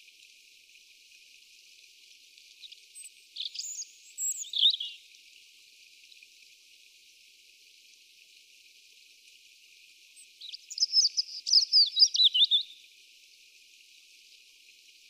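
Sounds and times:
European robin Erithacus rubecula singing: 0:02.6 - 0:05.0, 0:10.2 - 0:12.8.

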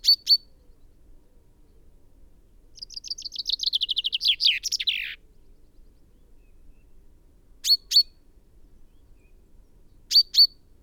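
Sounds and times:
common chaffinch Fringilla coelebs song with descending notes and flourish: 0:02.8 - 0:05.2.

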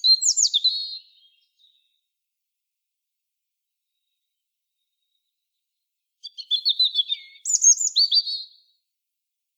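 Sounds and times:
European robin Erithacus rubecula singing: 0:00.0 - 0:02.0, 0:06.2 - 0:08.6.

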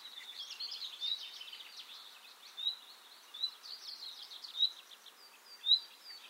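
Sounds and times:
Common nightingale Luscinia megarhynchos singing: 0:00.0 - 0:06.2.

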